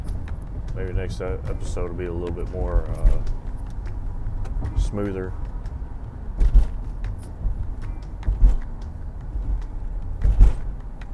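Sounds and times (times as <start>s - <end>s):
road-and-engine rumble from inside a moving car: 0.0s - 11.1s
speech: 0.8s - 3.4s, 4.6s - 5.5s
dull thumps: 2.2s - 11.1s.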